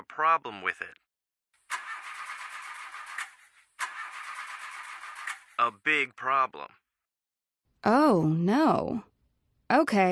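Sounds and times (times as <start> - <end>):
speech: 0.1 - 1.0, 5.6 - 6.8, 7.8 - 9.1, 9.7 - 10.0
car engine cranking with starter whirring: 1.7 - 5.6.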